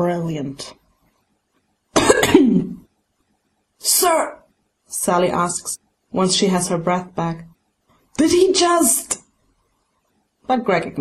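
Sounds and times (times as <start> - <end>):
speech: 0.0 - 0.8, 2.2 - 2.8, 3.8 - 7.5, 8.2 - 9.2, 10.5 - 10.9
person coughing after choking on hot tea: 2.0 - 2.8.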